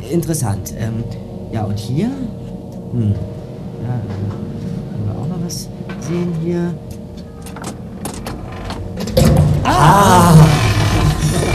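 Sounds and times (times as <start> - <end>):
speech: 0.1 - 4.6, 5.5 - 6.9, 9.7 - 10.4
door creaking slowly open with groaning hinges: 6.9 - 11.5.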